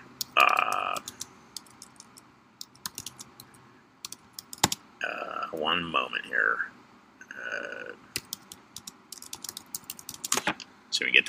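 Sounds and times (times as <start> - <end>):
typing on a computer keyboard: 0.2 - 4.8, 8.1 - 10.4
speech: 5.6 - 6.8, 11.0 - 11.2.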